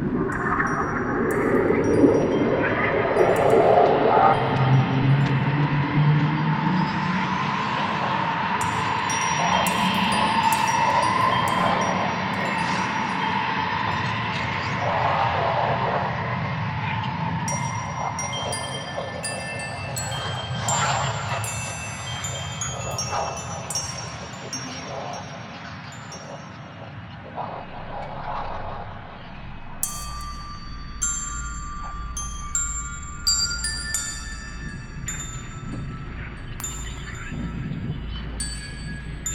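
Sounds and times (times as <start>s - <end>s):
chimes: 0.1s - 15.3s, 16.3s - 39.3s.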